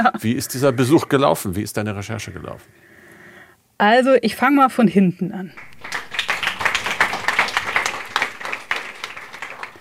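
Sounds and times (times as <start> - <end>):
speech: 0.0 - 2.9, 3.8 - 6.0
students clapping after a lecture at a school in Hamburg: 5.6 - 9.7.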